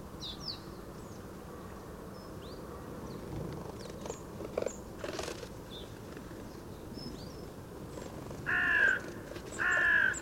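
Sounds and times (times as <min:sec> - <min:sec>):
carrion crow Corvus corone cawing: 0:08.5 - 0:09.0, 0:09.6 - 0:10.1.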